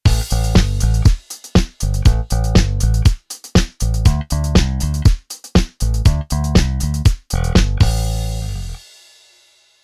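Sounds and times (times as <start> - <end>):
bass disco music: 0.0 - 8.8.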